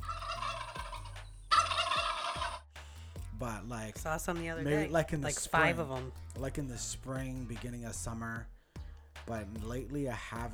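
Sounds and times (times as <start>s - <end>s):
turkey gobbling: 0.0s - 2.6s
speech: 3.4s - 8.6s, 9.2s - 10.5s.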